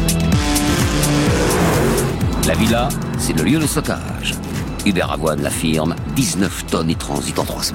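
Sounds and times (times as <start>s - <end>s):
several car engines roaring as cars speed along a road: 0.2s - 6.1s
speech: 2.9s - 7.7s.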